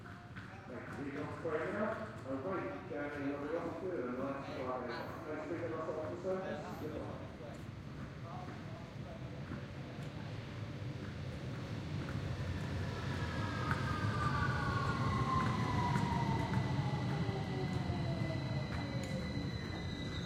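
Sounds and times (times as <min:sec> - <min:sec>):
underground train arriving at station platform: 0:00.0 - 0:20.2
speech: 0:01.0 - 0:07.2
underground train brakes squealing: 0:13.4 - 0:20.2.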